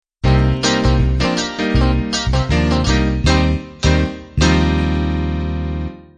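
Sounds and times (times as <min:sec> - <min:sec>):
1960s pop music ending: 0:00.2 - 0:05.0.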